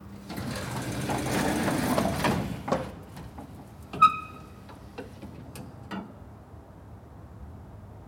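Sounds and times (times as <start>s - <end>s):
elevator door: 0.1s - 6.1s.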